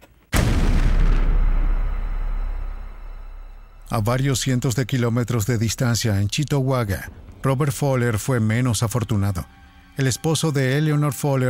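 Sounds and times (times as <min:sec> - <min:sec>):
bomb inside a toolbox exploding: 0:00.3 - 0:03.9
speech: 0:03.9 - 0:11.4.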